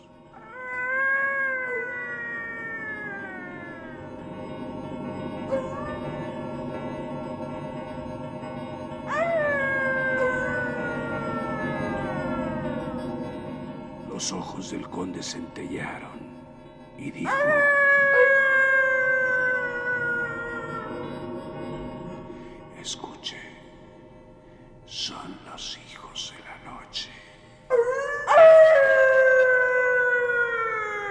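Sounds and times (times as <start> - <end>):
chorus of many animals howling at the bottom of a valley at dawn: 0.3 - 21.6, 27.7 - 31.0
speech: 14.2 - 16.4, 17.0 - 17.8.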